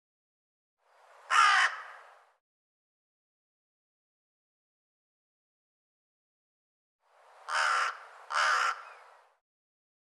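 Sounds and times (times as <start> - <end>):
bird giving a hoarse grating caw: 1.3 - 2.1, 7.4 - 9.2.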